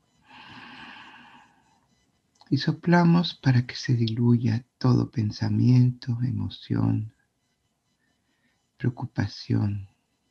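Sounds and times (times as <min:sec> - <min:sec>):
deep inhalation through the mouth: 0:00.3 - 0:01.6
speech: 0:02.5 - 0:07.2, 0:08.8 - 0:09.9.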